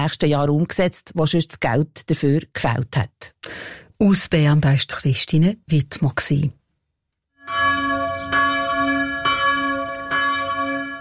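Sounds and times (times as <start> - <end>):
speech: 0.0 - 6.6
church bells ringing: 7.4 - 10.9.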